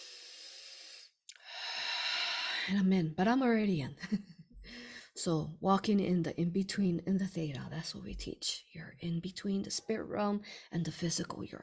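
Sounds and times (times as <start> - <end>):
deep breath: 0.0 - 2.7, 4.6 - 5.2
speech: 2.7 - 4.4, 5.2 - 11.6.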